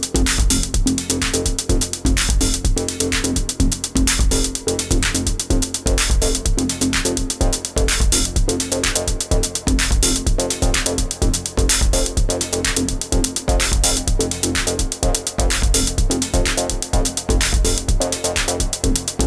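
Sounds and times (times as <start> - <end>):
techno music: 0.2 - 19.2.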